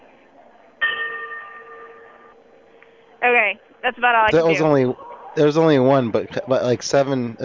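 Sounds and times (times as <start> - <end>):
faint noise: 0.0 - 7.4
single bell ringing with metallic tone: 0.8 - 2.4
speech: 3.2 - 7.4
laughter: 4.4 - 6.9.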